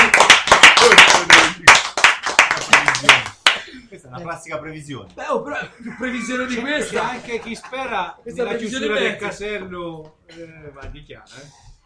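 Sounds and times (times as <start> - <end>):
hand clapping and applause at a local cultural association show: 0.0 - 3.7
speech: 4.3 - 11.7.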